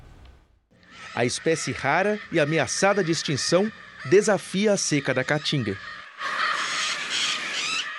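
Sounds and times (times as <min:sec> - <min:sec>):
Lear's macaw squawking calls in the dry Caatinga of northern Bahia: 0:00.8 - 0:07.9
speech: 0:01.2 - 0:06.4.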